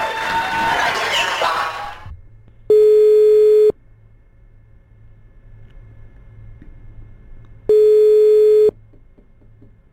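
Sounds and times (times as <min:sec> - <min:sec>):
crowd cheering: 0:00.0 - 0:02.1
low hum: 0:02.0 - 0:09.9
phone ringback tone of a live call to a listener: 0:02.7 - 0:03.7, 0:07.7 - 0:08.7.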